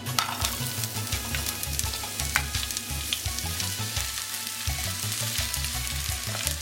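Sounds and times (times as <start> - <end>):
onions sizzling while frying in hot oil in a pan: 0.0 - 6.6.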